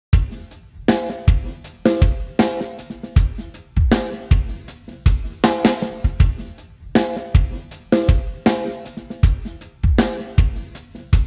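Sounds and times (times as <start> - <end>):
time-stretched drums: 0.2 - 11.2.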